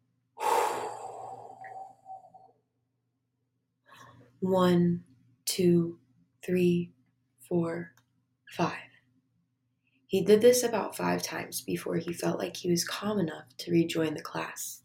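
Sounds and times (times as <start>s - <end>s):
deep breath out: 0.4s - 2.5s
speech: 4.4s - 8.9s, 10.1s - 14.8s.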